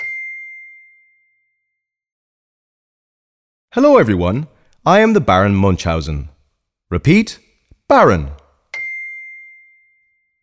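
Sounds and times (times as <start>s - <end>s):
bell ding: 0.0s - 1.7s, 8.7s - 10.4s
speech: 3.7s - 6.3s, 6.9s - 8.4s.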